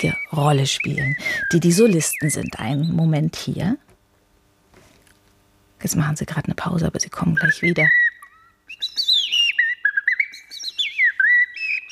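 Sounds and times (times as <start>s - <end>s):
two bird-voice imitators whistling an imitation of birdsong: 0.0s - 3.0s, 7.4s - 11.8s
speech: 0.0s - 3.8s, 5.8s - 8.0s.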